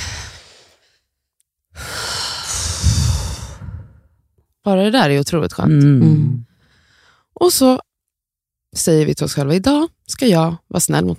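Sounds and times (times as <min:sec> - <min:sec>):
deep breathing during a calming exercise with hands on the chest: 0:00.0 - 0:01.1, 0:01.7 - 0:04.2, 0:06.4 - 0:07.3
speech: 0:04.6 - 0:06.5, 0:07.4 - 0:07.9, 0:08.7 - 0:11.1.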